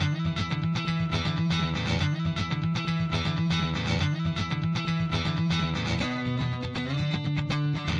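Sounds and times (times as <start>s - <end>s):
alternative strummed guitar loop: 0.0s - 7.9s.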